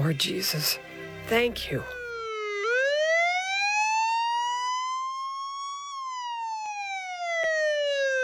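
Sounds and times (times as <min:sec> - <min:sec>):
speech: 0:00.1 - 0:02.0
ambulance siren wailing as the ambulance arrives: 0:02.0 - 0:08.2.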